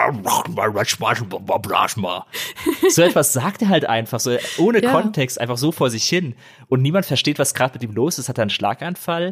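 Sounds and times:
voice imitating a man's nonsense babbling and grunting: 0.0 - 1.8, 4.3 - 5.2
speech: 0.1 - 9.3
laughter: 2.4 - 3.6, 4.2 - 5.2.

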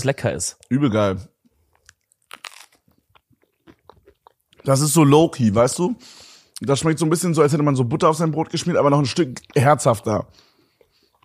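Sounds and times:
speech: 0.0 - 1.3, 4.6 - 10.5
crunchy snack being chewed: 1.7 - 4.8.

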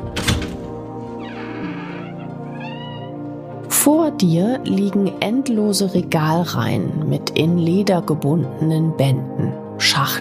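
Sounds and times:
heavy oak door thumping: 0.0 - 3.2
speech: 3.8 - 10.1.

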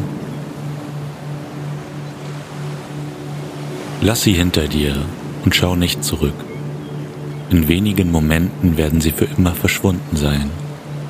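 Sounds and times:
faint low throbbing hum: 0.0 - 11.0
ocean waves rolling in: 0.0 - 11.0
speech: 4.0 - 6.5, 7.5 - 10.6.

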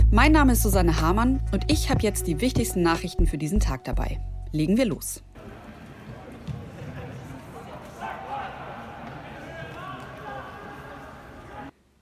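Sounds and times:
speech: 0.1 - 5.3
football players shouting and calling in an empty stadium: 5.4 - 11.7.

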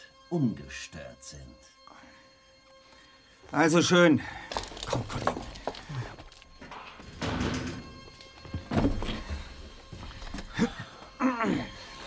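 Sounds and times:
speech: 0.3 - 1.7, 3.5 - 5.5
dull clunks: 6.5 - 10.5
door closing with a thud: 6.8 - 9.4.

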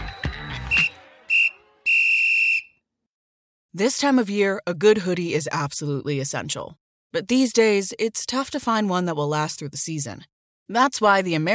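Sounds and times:
referee-style whistle blasts: 0.0 - 2.9
speech: 3.7 - 11.5.

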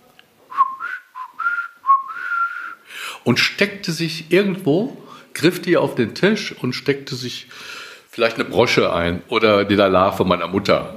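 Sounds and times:
person imitating whistling while walking through a room: 0.5 - 2.9
speech: 3.2 - 10.9.

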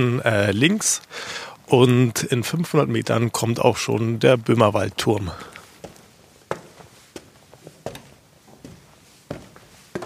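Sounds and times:
speech: 0.0 - 5.6
footsteps climbing the stairs of an outdoor lookout tower: 5.3 - 10.0.

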